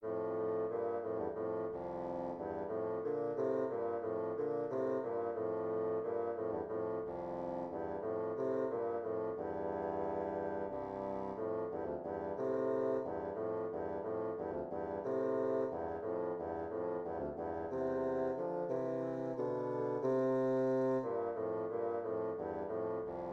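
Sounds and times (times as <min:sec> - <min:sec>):
two bassoons playing an air in F major: 0:00.0 - 0:23.3.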